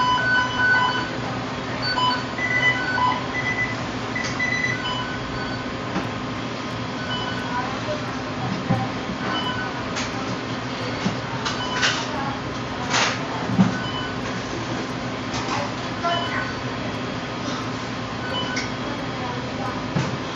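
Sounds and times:
short electronic beeps from machines at a job site: 0:00.0 - 0:20.3
voices: 0:00.0 - 0:20.3.

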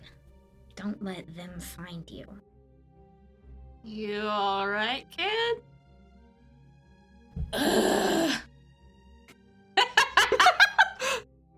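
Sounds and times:
speech: 0:00.8 - 0:02.5, 0:03.8 - 0:05.7
breathy groan: 0:07.4 - 0:08.5
laughter: 0:09.8 - 0:11.2.

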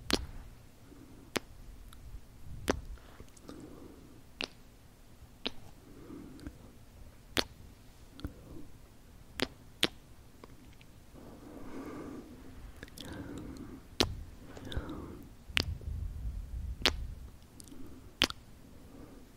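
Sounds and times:
crisp kiss sounds: 0:00.0 - 0:00.3, 0:02.6 - 0:03.5, 0:04.4 - 0:04.6, 0:07.4 - 0:07.6, 0:09.4 - 0:10.9, 0:15.6 - 0:15.8, 0:16.8 - 0:18.4
soft low mouth noises: 0:00.0 - 0:19.3.

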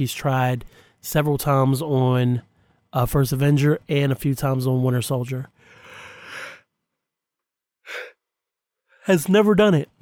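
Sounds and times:
speech: 0:00.0 - 0:05.6, 0:09.1 - 0:10.0
quick exhaled breath: 0:05.6 - 0:06.7, 0:07.8 - 0:08.2
person yawning: 0:07.9 - 0:08.2.

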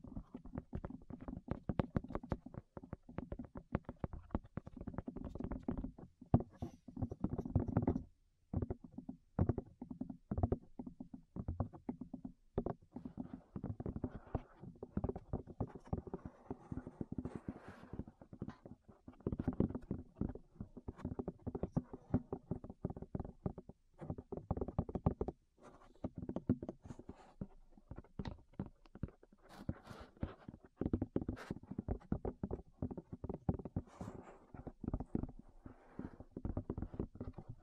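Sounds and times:
muffled ear tapping: 0:00.1 - 0:37.5.

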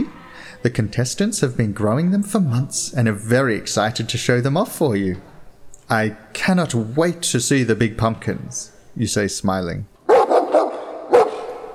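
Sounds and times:
speech: 0:00.6 - 0:05.3, 0:05.9 - 0:10.0
large dog barking outdoors: 0:10.1 - 0:11.7.

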